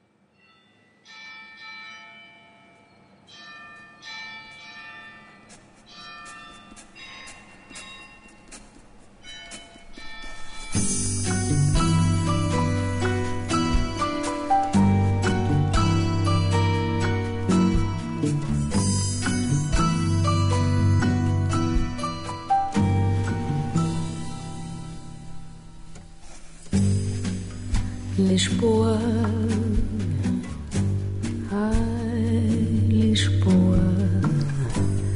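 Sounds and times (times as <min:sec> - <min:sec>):
instrumental music: 0:05.4 - 0:35.1
speech: 0:28.3 - 0:29.4.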